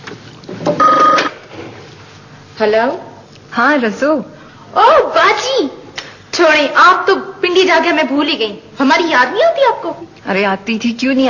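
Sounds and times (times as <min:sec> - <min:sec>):
telephone ringing in a home: 0:00.8 - 0:01.3
speech: 0:02.6 - 0:05.8, 0:06.4 - 0:11.2.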